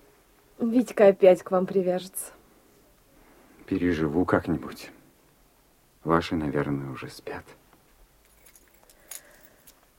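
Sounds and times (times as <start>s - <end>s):
speech: 0.6s - 2.4s, 3.7s - 5.0s, 6.0s - 7.6s
keys jangling: 8.2s - 9.8s.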